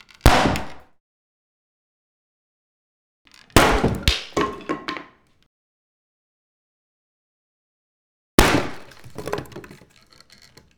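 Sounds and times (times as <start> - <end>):
axe chopping wood indoors with echo: 0.3 - 0.9, 3.6 - 4.9, 8.4 - 9.4.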